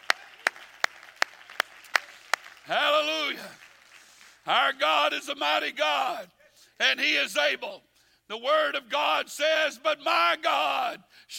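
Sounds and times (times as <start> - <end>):
audience clapping in unison: 0.0 - 4.8
speech: 2.7 - 3.6, 4.5 - 11.3.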